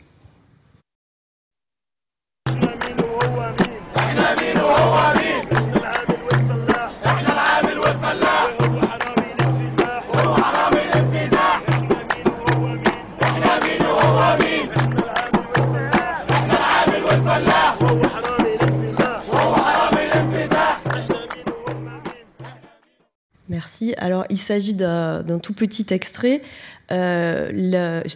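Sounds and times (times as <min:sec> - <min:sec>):
steady pulsing beat: 0:02.5 - 0:22.6
large protest crowd chanting slogans in unison: 0:02.5 - 0:23.0
speech: 0:23.8 - 0:28.1.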